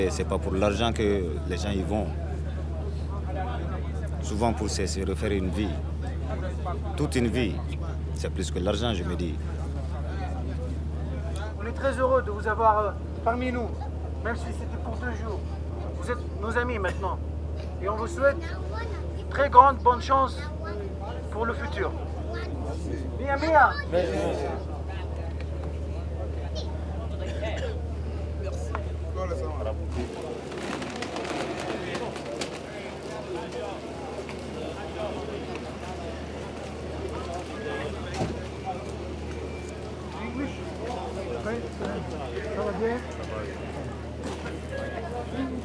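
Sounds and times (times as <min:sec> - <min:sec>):
speech: 0:00.0 - 0:02.3, 0:04.2 - 0:09.6, 0:11.6 - 0:20.6, 0:21.4 - 0:24.7
murmuring voices: 0:00.0 - 0:12.4, 0:22.0 - 0:45.6
boat engine droning: 0:00.0 - 0:45.6
clatter: 0:29.9 - 0:32.9
shuffling footsteps of people leaving a boat: 0:35.7 - 0:45.6.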